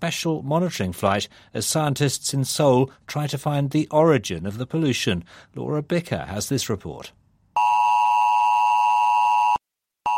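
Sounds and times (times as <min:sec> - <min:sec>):
speech: 0:00.0 - 0:07.2
phone pollution alert alarm beeping: 0:07.6 - 0:10.1.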